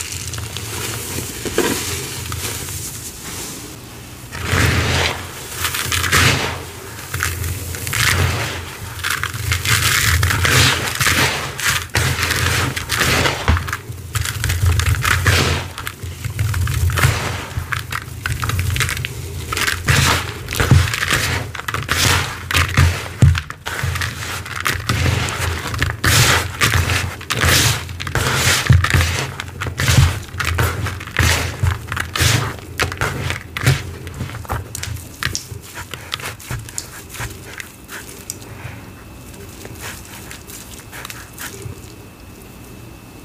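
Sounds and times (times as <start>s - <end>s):
sponge squeezing: 0.0s - 42.0s
soap paste being mixed and squeezed: 4.4s - 42.0s.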